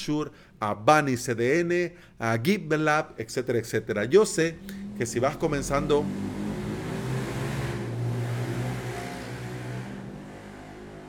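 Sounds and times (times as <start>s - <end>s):
speech: 0.0s - 6.4s
loud motorcycle engine roaring past: 4.5s - 11.0s.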